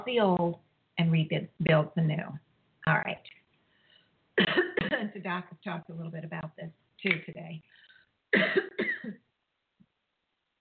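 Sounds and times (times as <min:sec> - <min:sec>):
speech: 0:00.0 - 0:03.4, 0:05.0 - 0:09.2
person clearing throat with rasping coughs: 0:04.4 - 0:05.1, 0:08.4 - 0:09.2.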